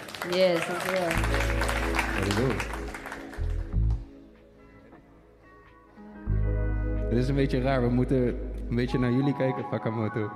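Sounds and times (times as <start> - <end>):
audience applause: 0.0 - 4.0
speech: 0.2 - 3.0, 7.2 - 10.3.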